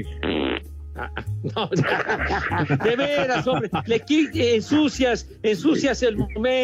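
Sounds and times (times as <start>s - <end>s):
speech: 0.0s - 0.3s, 1.0s - 6.6s
loud raspy fart: 0.2s - 0.7s
laughter: 1.0s - 5.0s.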